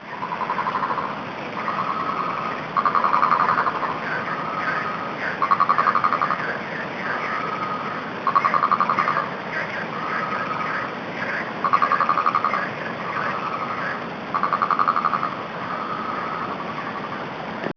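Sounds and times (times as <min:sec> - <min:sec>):
frogs in Ourika: 0:00.0 - 0:17.7.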